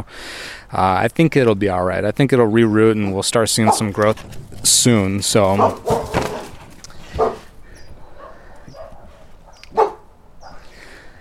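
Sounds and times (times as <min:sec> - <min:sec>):
speech: 0:00.0 - 0:06.2
rustling outdoor noise: 0:00.0 - 0:11.1
dog barking: 0:03.6 - 0:03.9, 0:05.6 - 0:06.5, 0:07.1 - 0:07.5, 0:08.2 - 0:10.7
dog whining yelps: 0:07.2 - 0:07.4, 0:08.2 - 0:10.6.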